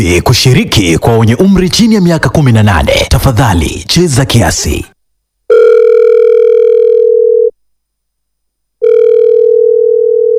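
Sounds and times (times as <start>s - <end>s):
speech: 0.0s - 4.9s
telephone ringing tones on the line: 5.5s - 7.5s, 8.8s - 10.3s.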